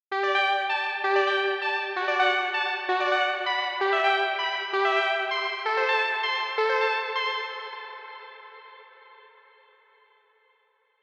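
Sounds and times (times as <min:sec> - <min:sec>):
plucked synthwave synth pop melody: 0:00.1 - 0:08.4.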